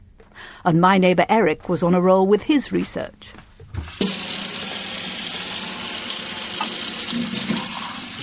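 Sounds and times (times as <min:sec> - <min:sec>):
speech: 0:00.6 - 0:03.4
kitchen tap running into a sink while washing dishes: 0:03.8 - 0:08.2.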